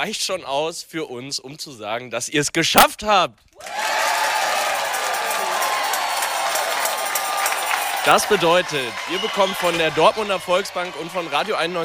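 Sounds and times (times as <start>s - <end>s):
speech: 0.0s - 4.0s, 8.0s - 11.8s
large crowd cheering and shouting: 3.6s - 11.8s
people clapping: 3.6s - 11.8s.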